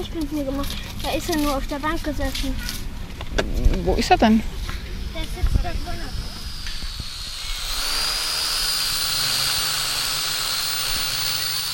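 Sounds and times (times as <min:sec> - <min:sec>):
speech: 0:00.0 - 0:02.8, 0:03.4 - 0:04.6
low rumbling wind: 0:00.0 - 0:11.4
small toy drone buzzing in flight: 0:05.1 - 0:11.7.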